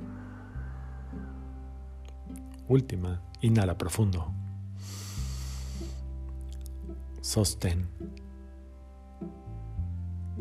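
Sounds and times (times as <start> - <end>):
low sustained musical drone: 0.0 - 10.4
speech: 2.7 - 5.0, 7.2 - 8.2
person exhaling through the nose during a guided breathing exercise: 4.8 - 6.2.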